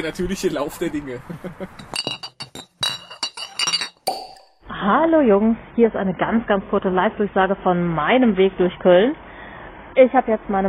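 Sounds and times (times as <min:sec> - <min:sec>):
speech: 0:00.0 - 0:02.1, 0:04.8 - 0:09.2, 0:10.0 - 0:10.6
glass beer bottles clinking together: 0:01.8 - 0:04.6.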